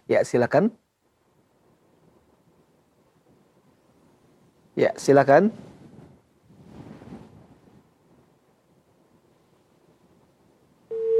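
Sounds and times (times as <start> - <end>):
faint hiss on a phone-in line: 0.0 - 11.0
speech: 0.1 - 0.8, 4.8 - 5.7
telephone busy tone after a disconnected call: 10.9 - 11.1.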